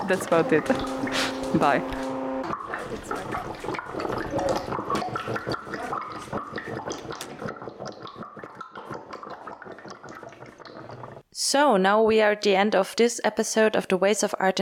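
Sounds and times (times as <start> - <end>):
water gurgling and splashing with bubbling and drips: 0.0 - 11.2
speech: 0.1 - 2.0, 2.9 - 4.6, 11.5 - 14.5.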